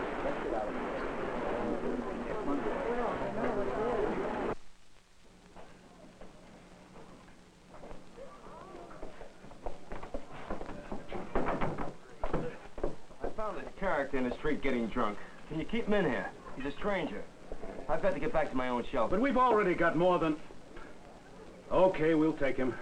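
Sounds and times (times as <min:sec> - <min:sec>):
faint voices in a quieter room: 0:00.0 - 0:04.6, 0:05.2 - 0:22.8
knocks on an outside door: 0:10.5 - 0:13.4
speech: 0:13.8 - 0:20.5, 0:21.7 - 0:22.8.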